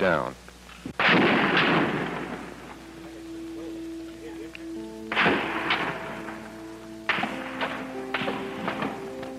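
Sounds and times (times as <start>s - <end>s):
bullets ricocheting off the top of a building: 1.0s - 2.5s, 5.1s - 6.3s, 7.1s - 9.2s
gunfire in a street shooting: 1.0s - 2.8s, 5.1s - 6.5s, 7.1s - 9.2s
faint voices: 2.7s - 5.1s.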